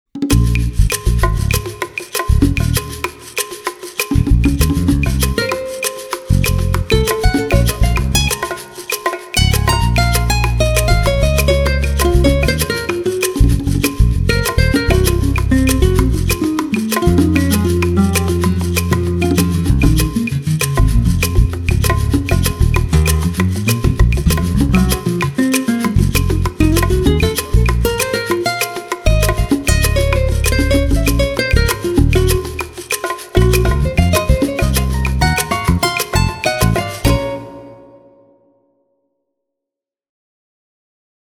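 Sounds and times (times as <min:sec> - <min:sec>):
Spanish guitar: 0:00.2 - 0:38.6.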